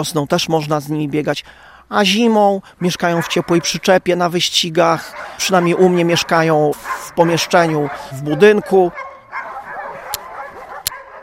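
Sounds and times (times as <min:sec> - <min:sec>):
speech: 0:00.0 - 0:09.1
sled dogs barking and yipping before being hitched to a quad: 0:02.7 - 0:11.2.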